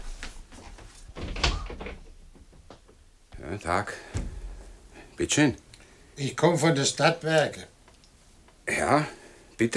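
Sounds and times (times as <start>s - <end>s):
house door being opened: 0.6s - 3.5s, 4.0s - 4.8s
door handle thumps and rattles: 1.1s - 2.7s
speech: 3.6s - 4.2s, 5.2s - 7.7s, 8.8s - 9.7s.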